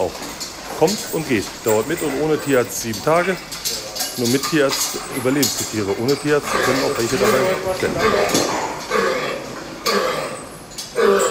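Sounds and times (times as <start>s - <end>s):
speech: 0.0s - 8.6s
pig with deep dry wheezing cough: 6.4s - 11.2s.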